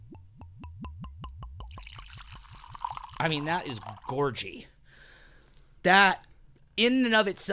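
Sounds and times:
whiskey glugging out of a bottle into a glass: 0.0 - 4.9
speech: 3.2 - 4.7, 5.8 - 7.5.

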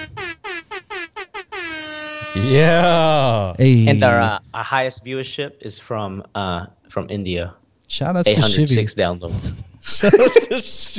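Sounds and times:
air horn sound effect blasts: 0.0 - 2.6
speech: 2.3 - 10.9
laughter: 9.9 - 10.9.

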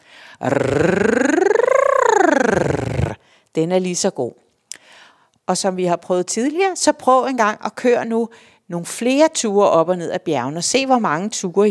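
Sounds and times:
speech: 0.4 - 1.2, 3.6 - 4.4, 5.5 - 11.6
voice making a rolled-tongue trill as a voice exercise: 0.4 - 3.2.

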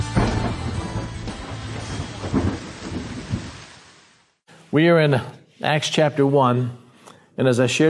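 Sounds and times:
thunder rumbling: 0.1 - 4.1
steady rain: 0.9 - 4.4
speech: 4.7 - 6.8, 7.4 - 7.8.

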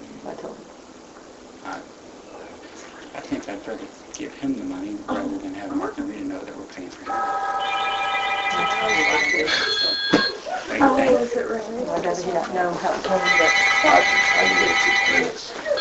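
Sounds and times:
speech: 3.6 - 10.1, 10.8 - 15.7
telephone ringing in bright electronic bursts: 7.1 - 11.1, 13.1 - 15.7.

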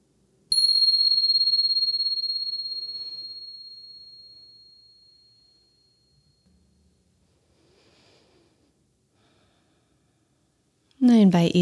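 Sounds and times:
single meditation bell struck and ringing: 0.5 - 6.4
faint low noise: 4.6 - 11.6
speech: 11.0 - 11.6.

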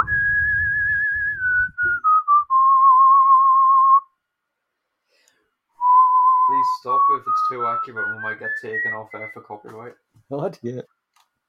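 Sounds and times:
person whistling a tune: 0.0 - 4.2, 5.8 - 9.9
speech: 7.2 - 11.0.

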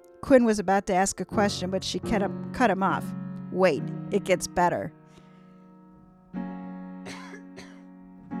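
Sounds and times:
speech: 0.2 - 5.0
person coughing: 7.1 - 7.9.

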